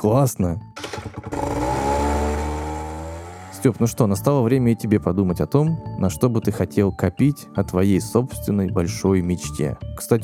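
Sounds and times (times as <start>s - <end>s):
speech: 0.0s - 1.5s, 3.6s - 10.2s
small moped engine revving: 0.8s - 3.9s.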